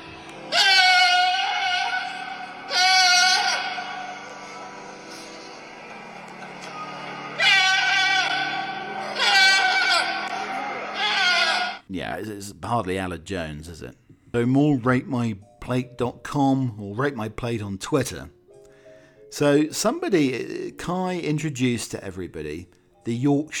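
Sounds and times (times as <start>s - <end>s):
goat bleating in long wavering tuneful cries: 0.5s - 3.8s, 7.4s - 11.8s
speech: 12.1s - 18.4s, 19.3s - 23.5s.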